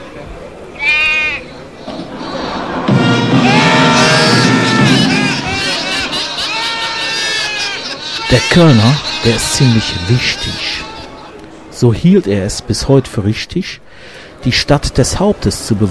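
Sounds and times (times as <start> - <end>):
crowd babble and people talking: 0.0 - 15.9
laughter: 1.8 - 11.4
billy goat bleating: 3.9 - 11.4
speech: 8.3 - 10.9, 11.8 - 15.9.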